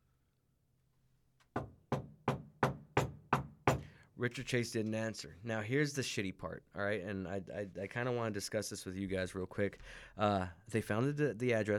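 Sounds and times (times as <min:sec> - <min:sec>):
firm knocking on a door: 0:01.5 - 0:03.9
speech: 0:04.2 - 0:11.7.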